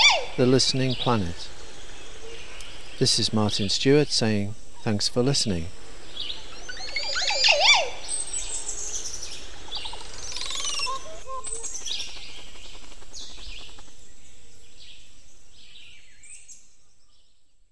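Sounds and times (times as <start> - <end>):
Montezuma oropendola song with liquid notes and sweeps: 0.0 - 12.2
other birds chirping: 0.0 - 17.6
steady background hiss: 0.0 - 17.7
speech: 0.4 - 1.6, 3.0 - 5.8.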